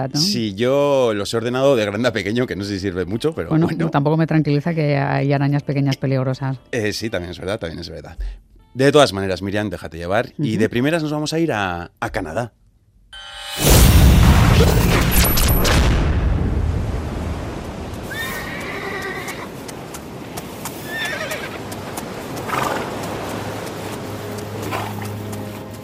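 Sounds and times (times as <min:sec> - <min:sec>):
speech: 0:00.0 - 0:13.8
loud rumbling rush: 0:13.6 - 0:18.2
trampling hooves: 0:17.4 - 0:25.8
horses whinnying in high wavering calls: 0:18.0 - 0:19.6, 0:20.6 - 0:23.0, 0:24.6 - 0:25.1.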